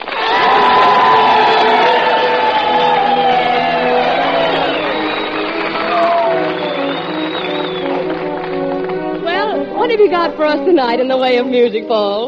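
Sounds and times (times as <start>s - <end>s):
shrill whistles from a large crowd: 0.0s - 9.1s
large crowd cheering: 0.0s - 10.4s
speech: 10.2s - 12.2s.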